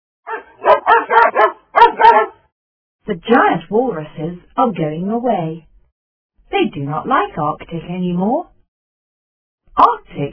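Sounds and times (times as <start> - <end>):
Arctic dogs barking: 0.3 - 2.5
speech: 3.1 - 5.7, 6.5 - 8.5, 9.8 - 10.3.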